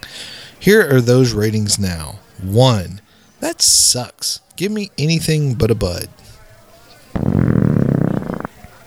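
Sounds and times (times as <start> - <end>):
speech: 0.6 - 6.3
long loud roaring belch: 7.2 - 8.5.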